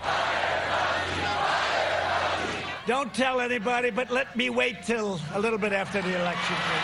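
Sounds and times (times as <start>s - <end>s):
large rally crowd chanting in unison: 0.0s - 2.9s
speech: 2.9s - 6.8s.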